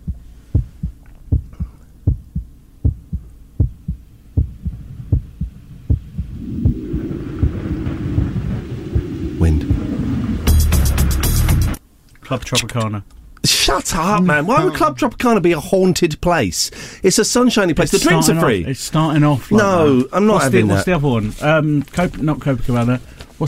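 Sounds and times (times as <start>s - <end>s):
thudding heartbeat sound effect in a song intro: 0.0s - 10.3s
rising low rumble: 0.0s - 11.8s
loud roaring rushing surge: 5.6s - 11.8s
speech: 12.3s - 23.4s.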